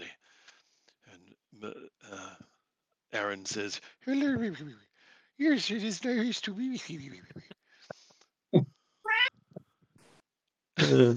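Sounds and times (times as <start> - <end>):
speech: 1.6 - 2.0, 3.1 - 7.5, 10.9 - 11.1
cat meowing: 9.1 - 9.3.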